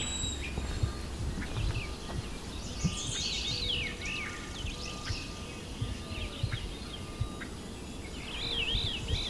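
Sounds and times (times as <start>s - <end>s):
great crested flycatcher rising whistled wheep calls: 0.0s - 9.2s
steady outdoor hiss: 0.0s - 9.2s.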